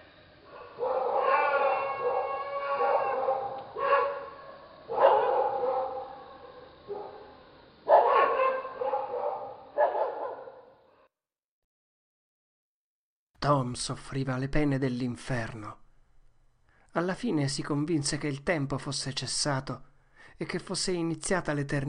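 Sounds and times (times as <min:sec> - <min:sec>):
faint distant howl: 0:00.0 - 0:10.8
dog howling at night: 0:00.5 - 0:07.3, 0:07.9 - 0:10.6
speech: 0:13.4 - 0:15.8, 0:17.0 - 0:21.8.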